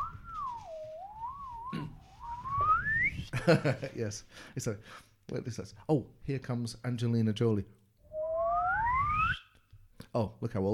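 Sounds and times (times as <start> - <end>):
voice imitating a swanny slide whistle: 0.0 - 3.2, 8.1 - 9.5
speech: 1.7 - 2.0, 3.3 - 7.8, 10.1 - 10.7.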